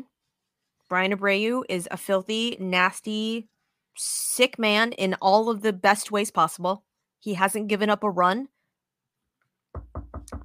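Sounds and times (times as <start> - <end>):
speech: 0.9 - 8.5
knuckles knocking on wood: 9.8 - 10.4.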